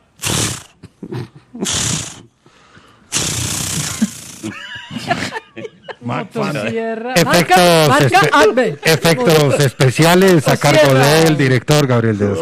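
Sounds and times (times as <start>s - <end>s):
person vocally imitating a chainsaw starting: 0.1s - 2.3s, 3.1s - 4.6s
people laughing: 4.0s - 11.2s
speech: 6.1s - 12.3s.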